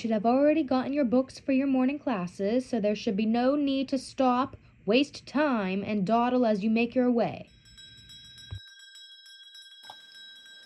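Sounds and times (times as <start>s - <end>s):
speech: 0.0s - 7.5s
school starting bell ringing: 7.4s - 10.6s.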